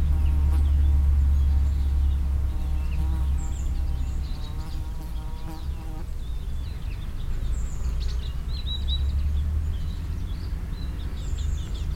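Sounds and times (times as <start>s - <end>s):
bee buzzing beside a field in Walsdorf: 0.0s - 6.1s
mild late summer wind in Walsdorf: 0.0s - 11.9s.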